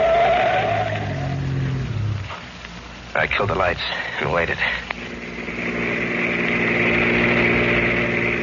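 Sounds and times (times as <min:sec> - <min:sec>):
car tire squealing while skidding at a curve: 0:00.0 - 0:01.9, 0:05.1 - 0:08.4
low car engine rumble: 0:00.0 - 0:08.4
speech: 0:03.2 - 0:05.0.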